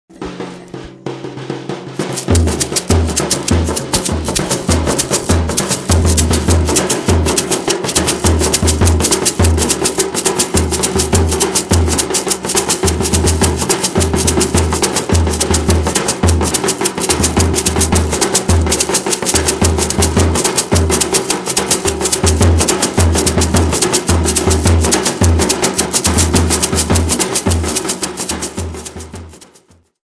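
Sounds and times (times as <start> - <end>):
coconut shell percussion: 0.1 - 29.9.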